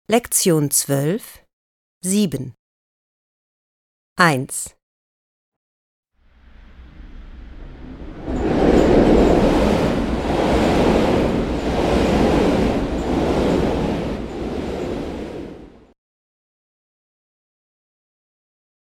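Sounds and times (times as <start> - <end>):
speech: 0.1 - 1.4, 2.0 - 2.6, 4.2 - 4.8
train passing with a loud steady rumble: 6.3 - 15.9.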